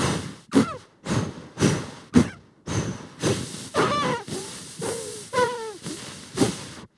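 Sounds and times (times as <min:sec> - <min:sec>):
rhythmic breathy hissing from circular breathing: 0:00.0 - 0:06.9
faint squeaky whistling tones: 0:03.7 - 0:06.0.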